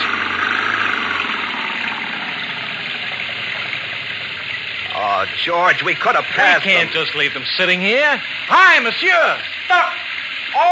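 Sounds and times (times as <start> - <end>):
French car engine revving at full throttle while stuck in mud: 0.0 - 7.6
speech: 5.2 - 9.9.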